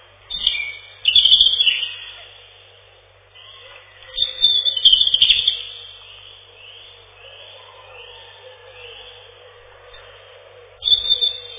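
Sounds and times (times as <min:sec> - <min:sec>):
European robin Erithacus rubecula singing high trills: 0:00.0 - 0:11.5
faint background hiss: 0:00.0 - 0:11.5.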